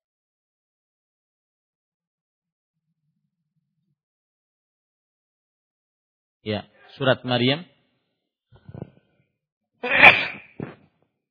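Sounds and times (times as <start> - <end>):
speech: 6.4 - 7.7
person sneezing: 9.8 - 10.8.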